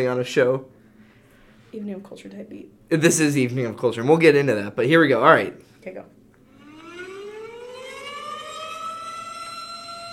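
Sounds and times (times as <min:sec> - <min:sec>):
speech: 0:00.0 - 0:00.8, 0:01.7 - 0:06.2
weather alert warning siren winding up to a high wail: 0:06.4 - 0:10.1.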